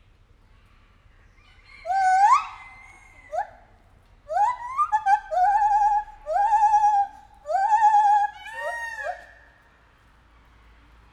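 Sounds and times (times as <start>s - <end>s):
captive white-handed gibbon hooting in a zoo: 4.3s - 9.3s.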